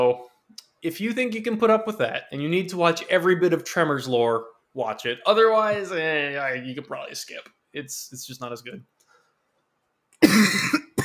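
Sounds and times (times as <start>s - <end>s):
speech: 0.0s - 9.0s, 10.2s - 10.8s
harsh cough: 10.2s - 11.0s.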